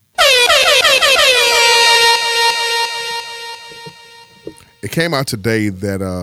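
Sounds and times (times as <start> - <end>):
loud air horn blast: 0.2 - 4.6
speech: 4.8 - 6.2.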